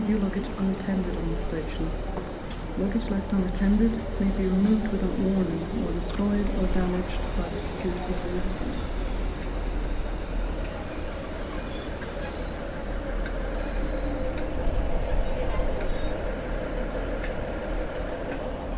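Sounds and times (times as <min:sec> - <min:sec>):
train arriving at station platform: 0:00.0 - 0:18.7
speech: 0:00.1 - 0:09.0
thin metallic train wheel squeals: 0:08.5 - 0:09.5, 0:10.5 - 0:12.9, 0:15.1 - 0:17.0.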